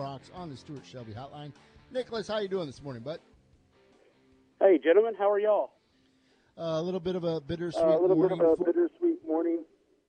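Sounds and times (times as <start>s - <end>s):
speech: 0.2s - 3.3s, 4.7s - 5.8s, 6.6s - 9.7s
voice over a phone line: 4.6s - 5.7s, 7.8s - 9.7s.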